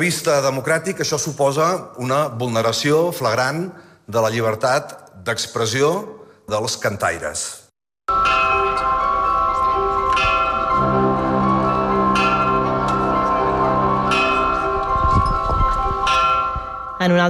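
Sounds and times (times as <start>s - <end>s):
speech: 0.0s - 7.6s, 17.0s - 17.2s
many bells ringing at an evening bell concert in Plaça de Catalunya, Barcelona: 8.1s - 17.2s.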